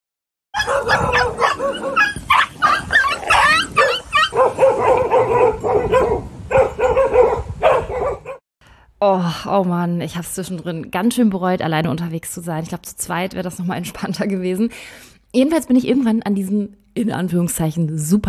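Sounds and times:
dog whimpering: 0.6 - 4.4
many dogs barking and yipping: 0.6 - 8.4
speech: 0.8 - 1.3, 9.0 - 18.2.

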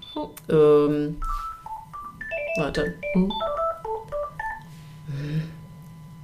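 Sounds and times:
speech: 0.2 - 1.4, 2.6 - 3.5
short murmured hum: 1.1 - 6.2
landline telephone ringing with electronic beeping tones: 1.2 - 4.7.

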